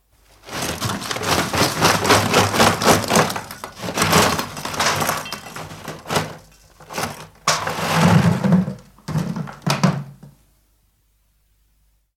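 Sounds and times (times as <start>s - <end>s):
hod of coal emptied into grate: 0.4s - 9.6s.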